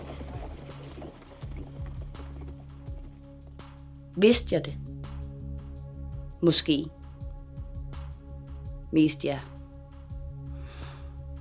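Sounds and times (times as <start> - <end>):
knight's horse hooves galloping over hard ground of a castle square: 0.0 - 4.9
speech: 4.2 - 4.8, 6.4 - 7.0, 8.9 - 9.5.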